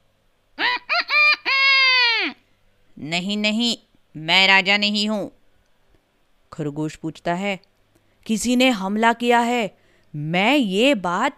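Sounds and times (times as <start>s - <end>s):
rooster crowing: 0.6s - 2.4s
speech: 3.0s - 5.4s, 6.5s - 11.3s.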